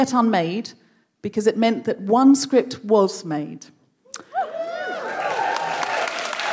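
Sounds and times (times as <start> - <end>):
speech: 0.0 - 4.3
several voices whooping and cheering: 4.2 - 6.5
crowd applauding with dense continuous clapping: 4.8 - 6.5.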